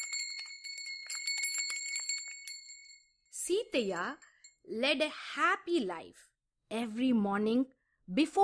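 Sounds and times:
cowbells ringing on cows' necks: 0.0s - 3.0s
speech: 3.5s - 8.4s.

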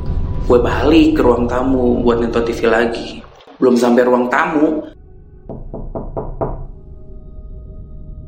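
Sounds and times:
speech: 0.5s - 4.9s
knocking on a wooden door: 5.5s - 6.7s.

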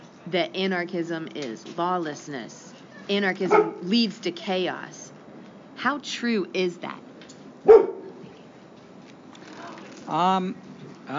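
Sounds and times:
speech: 0.3s - 5.0s, 5.8s - 7.0s, 7.6s - 7.9s, 10.1s - 11.1s
dog barking: 3.5s - 3.8s, 7.7s - 8.2s.

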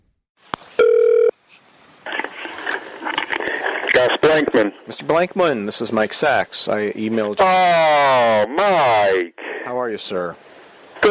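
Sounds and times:
noisy crackling telephone line noise as the call connects: 0.4s - 11.0s
telephone buzzing ring tone: 0.8s - 1.3s
speech: 4.0s - 11.0s.

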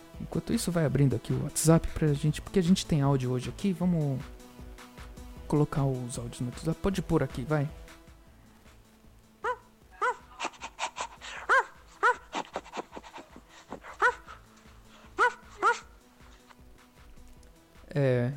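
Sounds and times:
speech: 0.3s - 4.4s, 5.5s - 7.8s
big dog barking: 9.4s - 16.0s.

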